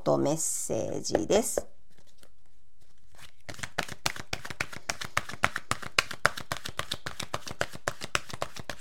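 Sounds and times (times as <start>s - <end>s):
speech: 0.0s - 1.7s
oracle cards being shuffled by hand: 1.9s - 8.7s.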